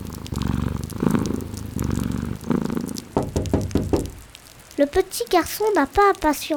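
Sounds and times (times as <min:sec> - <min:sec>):
cat purring with a steady low rumble: 0:00.0 - 0:04.4
speech: 0:04.8 - 0:06.5.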